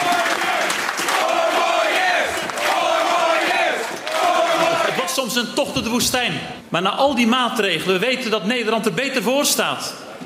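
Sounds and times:
large crowd cheering and chanting at an election party: 0.0s - 5.2s
speech: 5.4s - 10.2s.

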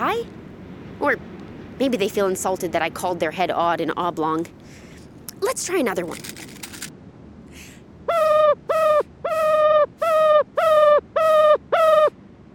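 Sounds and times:
speech: 1.0s - 4.8s, 5.4s - 6.5s
ruffed grouse calling: 8.1s - 12.1s.

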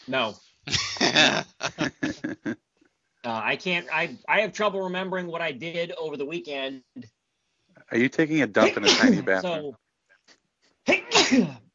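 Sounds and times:
speech: 0.1s - 7.2s, 7.9s - 11.6s
laughter: 0.7s - 2.6s, 8.0s - 9.6s
person sneezing: 0.9s - 2.5s, 8.6s - 9.6s, 10.9s - 11.6s.

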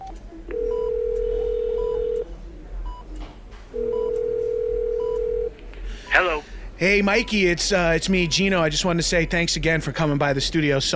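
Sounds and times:
telephone call ringing tone: 0.5s - 2.2s, 3.8s - 5.5s
speech: 6.2s - 10.9s.

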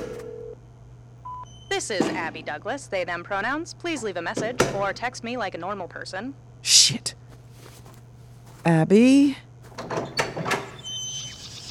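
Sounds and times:
speech: 1.8s - 7.2s, 8.6s - 9.5s
door in a diner sliding open: 9.8s - 11.2s.

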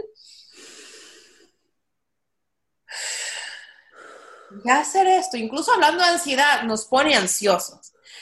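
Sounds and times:
deep breath in and out: 0.2s - 1.8s, 2.9s - 4.7s
speech: 4.5s - 8.0s.

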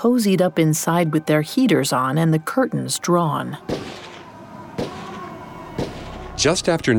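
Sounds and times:
speech: 0.0s - 4.1s, 6.4s - 6.9s
gunshots inside a house: 3.6s - 6.4s.

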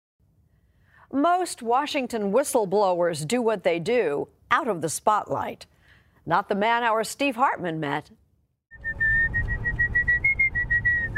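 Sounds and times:
speech: 1.1s - 5.7s, 6.3s - 8.2s
person whistling a tune: 8.8s - 11.1s.

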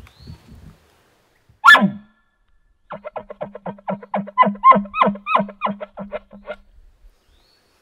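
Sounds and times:
hunter's elk call bark: 1.6s - 2.1s, 2.9s - 6.6s.

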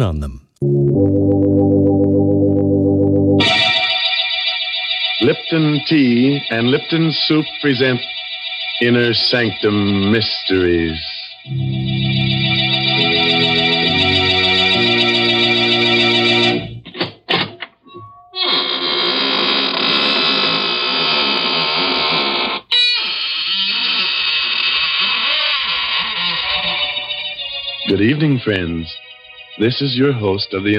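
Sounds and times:
speech: 0.0s - 1.8s, 5.2s - 11.9s, 28.0s - 29.0s, 29.6s - 30.7s
short musical fanfare: 0.6s - 4.3s, 11.5s - 16.8s
door groaning open with a long loud grinding creak: 18.3s - 27.0s.

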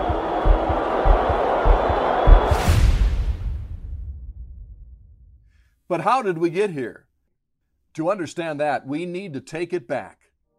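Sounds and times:
large stadium crowd at a World Series game roaring and cheering: 0.0s - 2.8s
rhythmic low thumps: 0.0s - 5.3s
speech: 5.9s - 7.0s, 8.0s - 10.2s.

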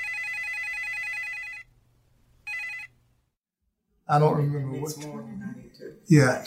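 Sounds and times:
telephone ringing with an electronic trill: 0.0s - 1.7s, 2.5s - 3.0s
speech: 4.1s - 6.4s.

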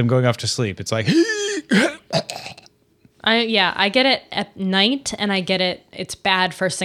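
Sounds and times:
speech: 0.0s - 2.4s, 3.2s - 6.8s
raspy throaty cough: 1.0s - 2.7s.

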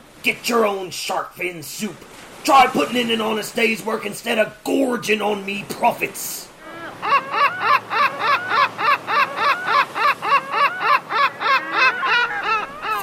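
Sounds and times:
speech: 0.2s - 6.5s
gulls squawking: 6.6s - 13.0s.

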